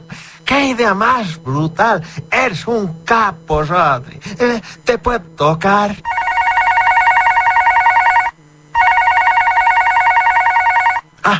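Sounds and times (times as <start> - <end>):
speech: 0.5 - 6.2
telephone ringing for an incoming call: 6.1 - 11.1.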